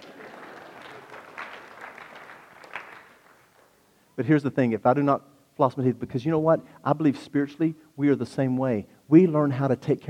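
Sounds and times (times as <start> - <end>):
audience applauding: 0.0 - 3.8
speech: 4.2 - 10.0.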